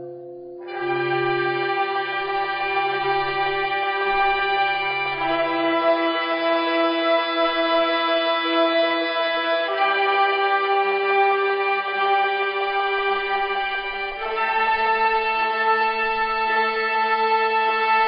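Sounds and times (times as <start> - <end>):
music played without drums: 0.5 - 18.0.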